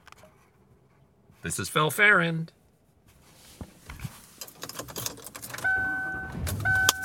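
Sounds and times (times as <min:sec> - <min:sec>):
speech: 0:01.4 - 0:02.6
clicks, taps and rattles inside a car: 0:03.9 - 0:07.0
electronic two-tone chime in a car: 0:05.6 - 0:07.0.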